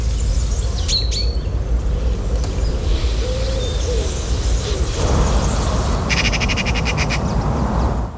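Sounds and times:
common chaffinch singing: 0.0 - 8.0
outdoor noise: 0.0 - 8.1
faint bird calls: 2.4 - 7.4.

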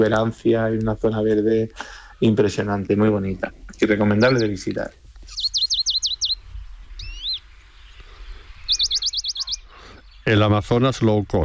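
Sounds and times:
speech: 0.0 - 5.0, 10.3 - 11.4
Western Bonelli's warbler singing in the Sierra de Segura: 3.8 - 10.8
brief soft call: 5.2 - 10.3.

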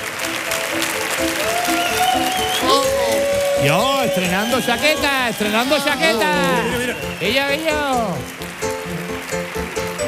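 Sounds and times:
audience clapping: 0.0 - 10.0
cheering whoops and whistles: 1.4 - 7.9
speech: 3.6 - 8.6.

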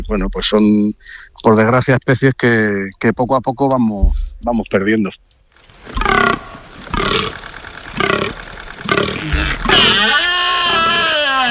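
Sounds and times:
speech: 0.1 - 5.2, 7.0 - 8.4
fallow deer rutting groans: 5.7 - 11.4.

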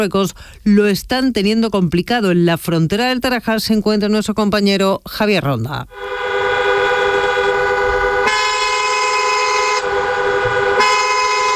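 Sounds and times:
speech: 0.0 - 6.3
car horns honking amid queued traffic at a border crossing: 5.9 - 11.5
low rumble of queued vehicles at a border crossing: 5.9 - 11.5.

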